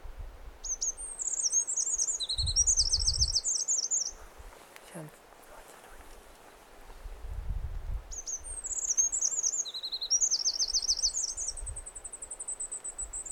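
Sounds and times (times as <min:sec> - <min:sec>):
faint background hiss: 0:00.0 - 0:13.3
Eurasian wren Troglodytes troglodytes song with high tumbling notes and rattling trills: 0:00.6 - 0:04.2, 0:08.1 - 0:13.3.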